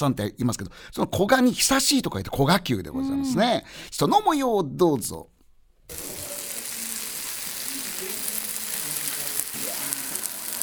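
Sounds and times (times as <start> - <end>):
speech: 0.0 - 6.1
marinated beef offal sizzling on an iron griddle in a special sauce: 5.9 - 10.6.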